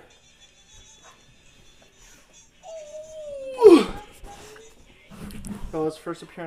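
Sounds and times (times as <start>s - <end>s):
dog whining: 2.6s - 4.8s
speech: 5.8s - 6.4s.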